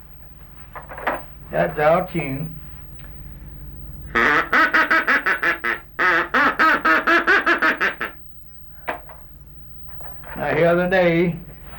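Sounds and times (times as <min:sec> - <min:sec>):
speech: 0:01.5 - 0:02.6, 0:10.6 - 0:11.7
duck call quacking: 0:04.1 - 0:08.2.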